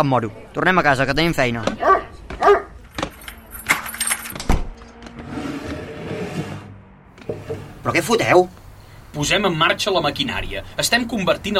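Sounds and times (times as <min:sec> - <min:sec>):
speech: 0:00.0 - 0:02.6, 0:07.9 - 0:08.6, 0:09.2 - 0:11.5
dog barking: 0:01.8 - 0:02.7
jingling and clattering handling noises: 0:02.9 - 0:04.4.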